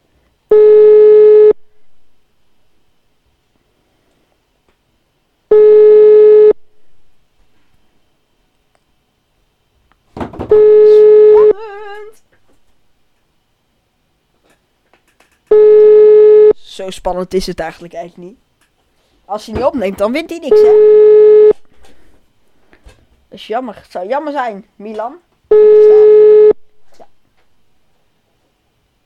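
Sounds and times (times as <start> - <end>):
telephone ringing tone while a call is dialed out: 0.5 - 1.6, 5.5 - 6.6, 10.5 - 11.6, 15.5 - 16.6, 20.5 - 21.6, 25.5 - 26.6
speech: 16.8 - 18.5, 19.3 - 21.0, 23.4 - 25.9.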